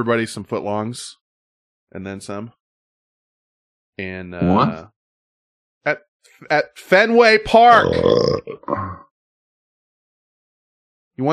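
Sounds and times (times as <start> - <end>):
speech: 0.0 - 1.2, 1.9 - 2.6, 4.0 - 5.0, 5.8 - 9.0, 11.2 - 11.3
deep throaty burp: 7.7 - 9.1.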